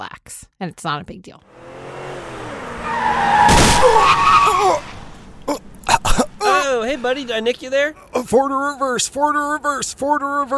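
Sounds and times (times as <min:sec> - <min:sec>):
speech: 0:00.0 - 0:01.7, 0:06.8 - 0:10.5
car tires squealing in a skid: 0:01.5 - 0:07.6.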